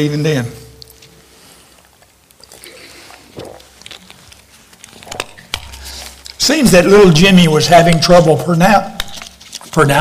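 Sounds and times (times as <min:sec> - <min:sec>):
speech: 0:00.0 - 0:00.6, 0:06.4 - 0:09.0, 0:09.8 - 0:10.0
person sipping water: 0:00.8 - 0:06.4
swallow: 0:02.4 - 0:04.1.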